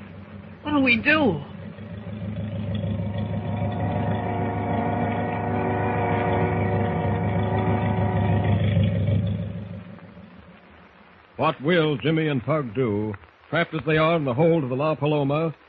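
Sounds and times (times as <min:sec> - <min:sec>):
boat motors rumbling: 0:00.0 - 0:11.1
speech: 0:00.6 - 0:01.5, 0:11.4 - 0:15.6.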